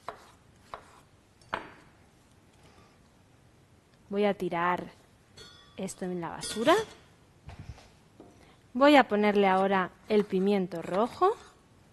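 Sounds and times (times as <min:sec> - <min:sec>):
sharp knife chopping cucumber for gazpacho: 0:00.0 - 0:01.0
speech: 0:04.1 - 0:05.0, 0:05.8 - 0:07.0, 0:08.8 - 0:11.5.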